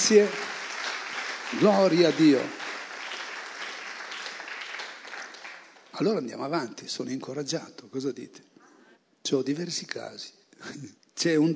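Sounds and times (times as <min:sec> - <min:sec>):
congregation at a worship gathering clapping: 0:00.0 - 0:06.2
speech: 0:00.1 - 0:00.4, 0:01.5 - 0:02.6, 0:06.0 - 0:08.5, 0:09.2 - 0:11.5.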